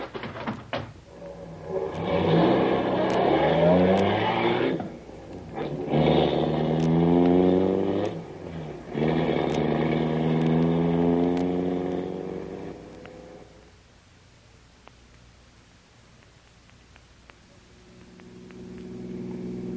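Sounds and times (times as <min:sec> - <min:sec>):
car engine accelerating through gear changes in pursuit of another car: 0:01.1 - 0:13.6, 0:17.8 - 0:19.7.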